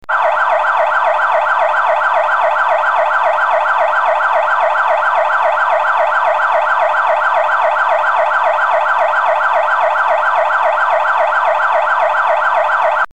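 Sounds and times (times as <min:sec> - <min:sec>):
police vehicle siren: 0:00.1 - 0:13.1.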